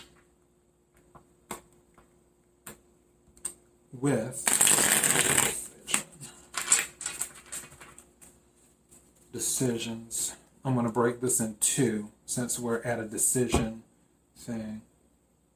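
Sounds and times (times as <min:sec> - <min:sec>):
speech: 0:03.9 - 0:04.6, 0:09.3 - 0:14.9
tarot cards riffle shuffling: 0:04.5 - 0:09.3.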